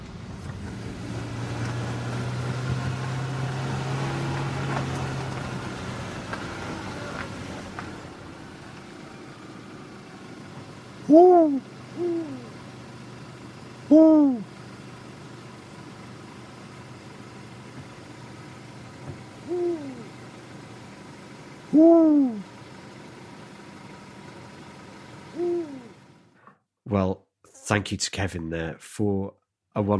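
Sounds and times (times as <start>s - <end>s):
faint low engine-like hum: 0.0s - 26.5s
eagle owl giving deep resonant hoots: 11.0s - 12.9s, 13.8s - 14.6s, 19.4s - 20.2s, 21.7s - 22.5s, 25.3s - 26.0s
speech: 11.1s - 12.2s, 13.9s - 14.4s, 27.7s - 29.9s.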